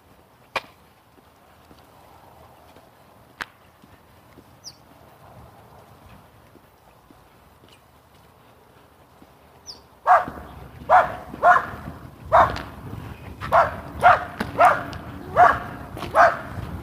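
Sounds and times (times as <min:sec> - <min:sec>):
small dogs barking excitedly at an approaching person: 0:10.0 - 0:16.8.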